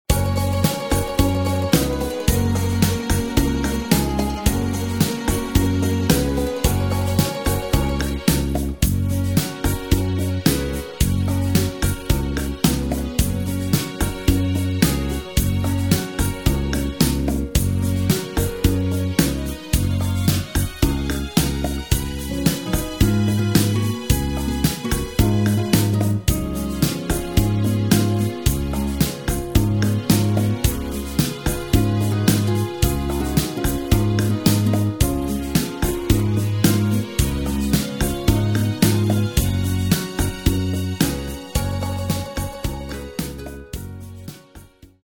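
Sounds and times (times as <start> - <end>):
backing track without backing vocals: 0.0 - 45.0.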